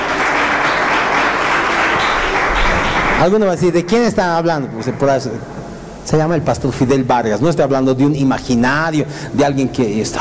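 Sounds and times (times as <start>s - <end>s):
audience applauding: 0.0s - 3.8s
speech: 3.2s - 10.2s.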